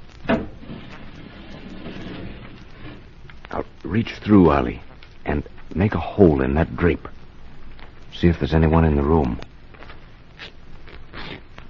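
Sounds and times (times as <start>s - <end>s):
low steady rumble of sliding wall panel moving: 0.3s - 3.2s
speech: 3.6s - 7.2s, 8.1s - 9.5s.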